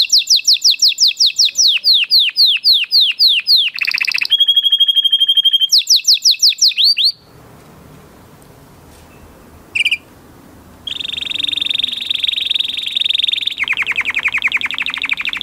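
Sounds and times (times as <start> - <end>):
canary singing high trills and sweeping chirps: 0.0 - 7.4, 9.1 - 10.2, 10.8 - 15.4
quiet hiss: 7.1 - 15.4.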